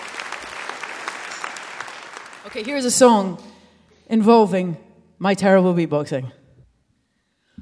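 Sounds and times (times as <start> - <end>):
audience applause: 0.0 - 2.8
speech: 2.4 - 3.5, 4.1 - 6.4.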